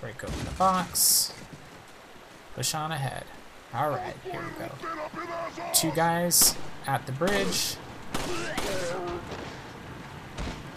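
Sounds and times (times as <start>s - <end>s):
speech: 0.0s - 1.4s, 2.6s - 9.6s
gunfire in a shooter video game: 7.3s - 9.2s.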